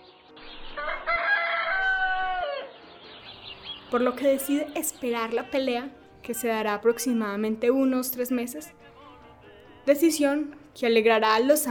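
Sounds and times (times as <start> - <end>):
rooster crowing: 0.8 - 2.8
speech: 3.9 - 8.9, 9.8 - 11.6.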